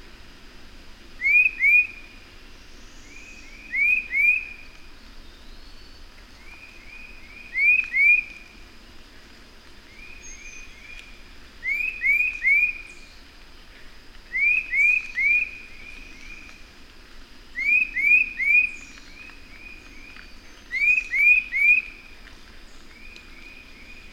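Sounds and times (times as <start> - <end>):
bird singing short rising whistled notes: 1.2 - 2.0, 3.1 - 4.6, 7.3 - 8.4, 11.6 - 13.0, 14.3 - 16.4, 17.6 - 19.2, 20.7 - 21.9.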